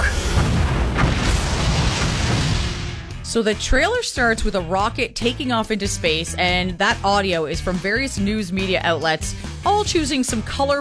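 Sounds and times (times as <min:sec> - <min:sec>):
explosion closing a film trailer: 0:00.0 - 0:03.3
speech: 0:03.3 - 0:10.7.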